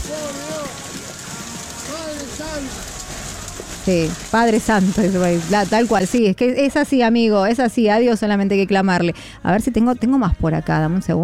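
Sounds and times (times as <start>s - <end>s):
hail pelting down on surfaces: 0.0s - 6.2s
speech: 2.4s - 3.0s, 3.9s - 11.2s.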